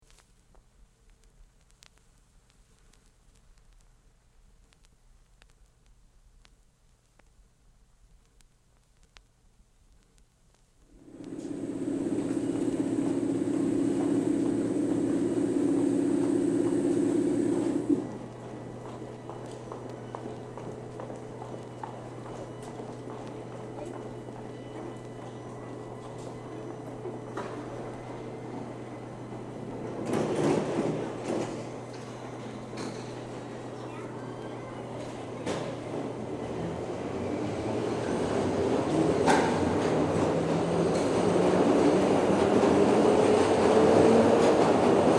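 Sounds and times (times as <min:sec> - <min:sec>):
train at platform departing: 0:10.9 - 0:45.1.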